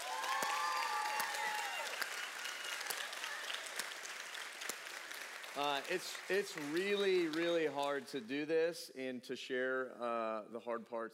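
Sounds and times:
audience clapping for a speaker: 0:00.0 - 0:08.4
speech: 0:05.6 - 0:11.1.

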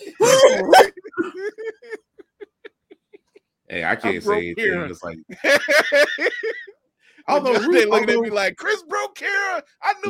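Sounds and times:
coughing and throat clearing: 0:00.2 - 0:01.8
laughter: 0:00.2 - 0:04.5, 0:05.3 - 0:08.1
speech: 0:03.8 - 0:06.6, 0:07.3 - 0:10.0.

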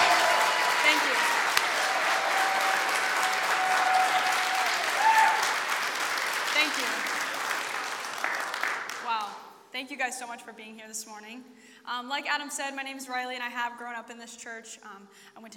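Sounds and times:
church congregation applauding in a standing ovation: 0:00.0 - 0:09.4
speech: 0:10.1 - 0:15.5.

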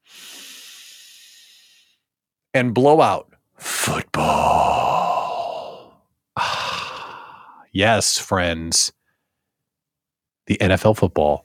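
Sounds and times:
deep breath: 0:00.0 - 0:02.1, 0:04.7 - 0:07.7
speech: 0:02.6 - 0:03.3, 0:07.8 - 0:09.0, 0:10.5 - 0:11.4.

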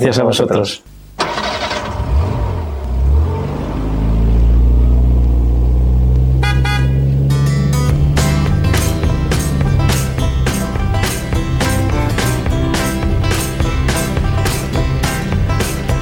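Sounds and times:
speech: 0:00.0 - 0:00.9
car engine starting: 0:01.0 - 0:16.0
car horn toots: 0:06.3 - 0:07.4.

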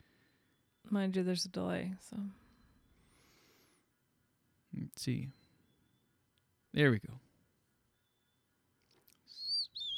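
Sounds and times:
speech: 0:00.9 - 0:02.4, 0:04.8 - 0:05.4, 0:06.8 - 0:07.2
high thin bird chirps: 0:05.3 - 0:06.2, 0:07.9 - 0:08.5, 0:09.2 - 0:09.9.

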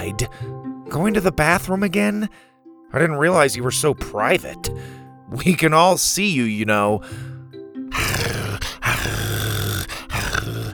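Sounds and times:
speech: 0:00.0 - 0:07.3
dog growling playfully: 0:07.9 - 0:10.7.

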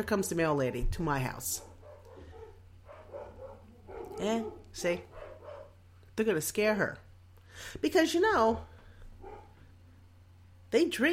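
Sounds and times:
speech: 0:00.0 - 0:01.7, 0:04.2 - 0:05.1, 0:06.2 - 0:07.0, 0:07.6 - 0:08.7, 0:10.7 - 0:11.1
low steady hum: 0:00.0 - 0:11.1
dog barking: 0:01.6 - 0:05.8, 0:09.2 - 0:09.7.

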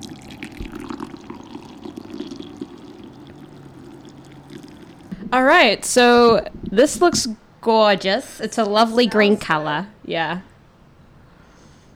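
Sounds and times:
hot green blueberry tea poured into a cup: 0:00.0 - 0:05.3
speech: 0:05.3 - 0:10.5.

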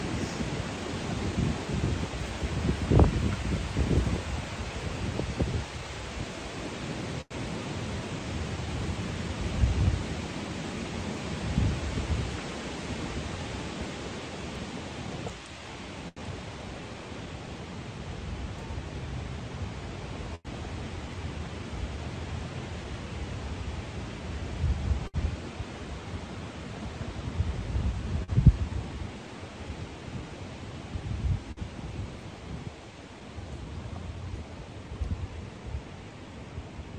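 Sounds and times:
wind blowing outdoors on a sunny day: 0:00.0 - 0:36.9.

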